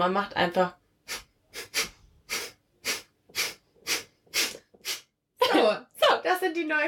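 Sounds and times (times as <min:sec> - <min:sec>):
speech: 0:00.0 - 0:00.8, 0:06.6 - 0:06.8
rapid forceful pranayama breaths through the nose: 0:01.0 - 0:05.2.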